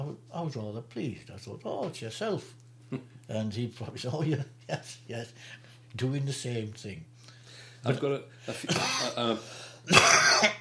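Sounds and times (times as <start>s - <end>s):
speech: 0.0s - 7.1s, 7.8s - 10.5s
man clearing his throat: 8.5s - 10.5s.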